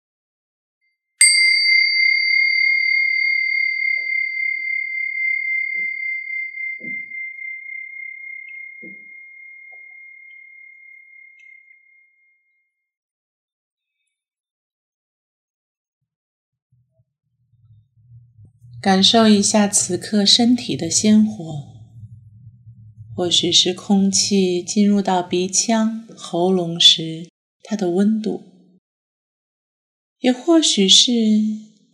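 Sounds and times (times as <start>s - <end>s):
single meditation bell struck and ringing: 1.2s - 11.7s
speech: 18.8s - 21.8s, 23.2s - 28.5s, 30.2s - 31.9s.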